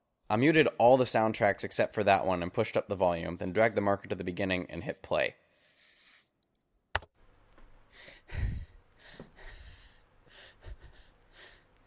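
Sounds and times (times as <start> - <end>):
speech: 0.3 - 5.4, 8.3 - 8.5
quiet scared shaky breathing: 7.9 - 11.8.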